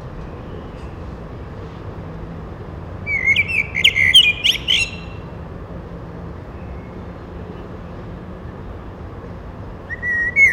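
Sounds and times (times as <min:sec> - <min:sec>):
Eurasian blackbird Turdus merula singing a short whistled phrase: 0:03.1 - 0:05.2, 0:09.9 - 0:10.5.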